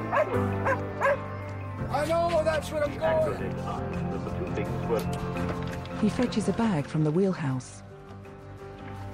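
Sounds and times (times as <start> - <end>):
dog barking: 0.1 - 1.2
speech: 0.3 - 0.9, 1.9 - 7.9.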